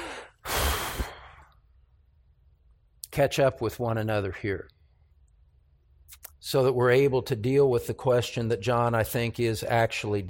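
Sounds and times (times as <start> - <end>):
group taking a deep breath together: 0.0 - 1.6
speech: 3.2 - 4.8, 6.2 - 10.2.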